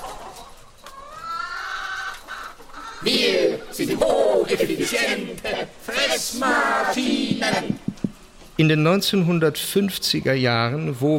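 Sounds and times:
chicken clucking and squawking: 0:00.0 - 0:08.3
faint hiss: 0:00.0 - 0:11.1
speech: 0:03.0 - 0:07.8, 0:08.6 - 0:11.1.

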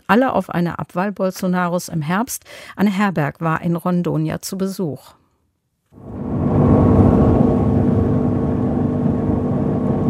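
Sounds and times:
speech: 0:00.1 - 0:05.2
faint wash of water noise: 0:06.0 - 0:10.0
motorboat engine on a river starting and droning: 0:06.0 - 0:10.0.

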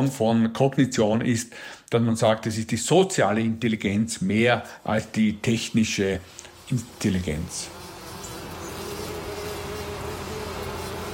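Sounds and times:
speech: 0:00.0 - 0:07.8
bees and bumblebees buzzing: 0:04.8 - 0:11.1.

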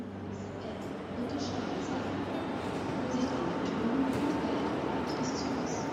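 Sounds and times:
rumble of trains at Berlin Hauptbahnhof railway station: 0:00.0 - 0:05.9.

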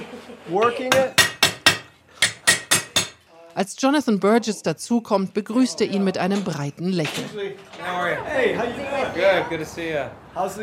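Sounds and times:
speech: 0:00.2 - 0:01.3, 0:03.6 - 0:10.6
blacksmith's hammer striking an anvil: 0:00.9 - 0:03.2.

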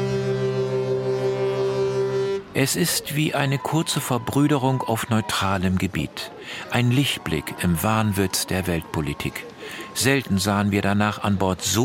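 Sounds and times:
icebreaker ship horns blaring: 0:00.0 - 0:04.6
wind over open water: 0:00.0 - 0:11.8
speech: 0:02.6 - 0:11.8.

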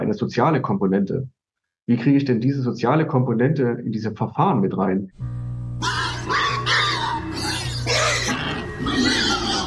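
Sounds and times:
speech: 0:00.1 - 0:06.4
steady low hum: 0:05.2 - 0:08.9
pigs squealing: 0:05.8 - 0:09.6.

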